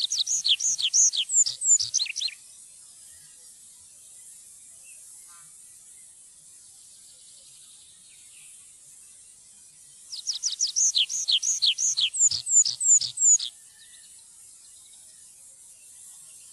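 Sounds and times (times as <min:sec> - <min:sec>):
tree pipit singing rapid high down-slurred notes: 0:00.0 - 0:02.4, 0:10.1 - 0:13.5.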